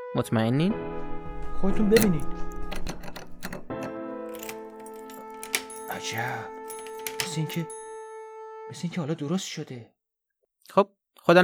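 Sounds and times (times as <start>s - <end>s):
speech: 0.1s - 1.0s, 1.6s - 2.5s, 6.0s - 6.5s, 7.2s - 7.8s, 8.7s - 10.0s, 10.7s - 11.4s
key jiggled and turned in a stiff door lock: 1.9s - 7.9s.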